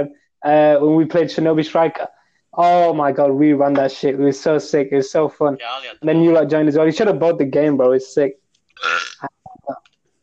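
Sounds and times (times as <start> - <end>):
speech: 0.0 - 9.8
burp: 8.8 - 9.4.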